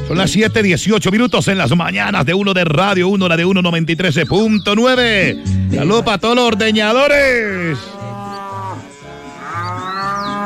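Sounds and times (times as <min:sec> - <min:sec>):
speech: 0:00.1 - 0:08.0
cow mooing: 0:06.4 - 0:10.4.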